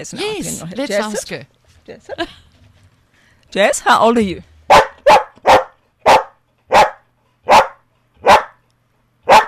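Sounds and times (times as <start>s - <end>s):
speech: 0.0s - 2.5s, 3.5s - 4.8s
female dog barking on command: 4.7s - 8.6s, 9.2s - 9.4s.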